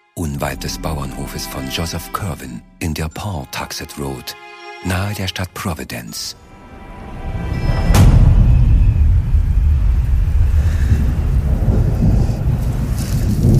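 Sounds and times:
speech: 0.4s - 6.5s
wind: 6.4s - 13.5s
distant rolling thunder near a farmhouse: 7.4s - 13.5s
rain: 8.4s - 13.5s.

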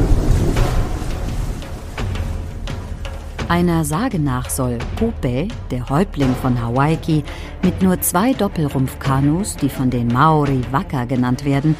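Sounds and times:
sharper splashes of breaking waves: 0.0s - 3.5s
rough storm waves crashing on the ocean: 0.0s - 4.1s
wind blowing across the ocean: 0.0s - 5.6s
speech: 3.5s - 11.7s.

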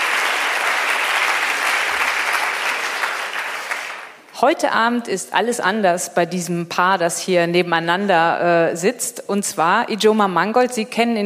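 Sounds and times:
audience applause in a hall: 0.0s - 4.2s
speech: 4.4s - 11.2s.

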